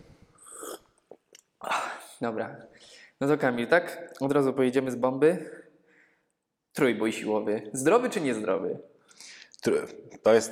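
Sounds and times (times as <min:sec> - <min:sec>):
breathy gulp: 0:00.3 - 0:02.2
sipping coffee: 0:00.4 - 0:01.2
speech: 0:02.2 - 0:05.6, 0:06.8 - 0:10.5.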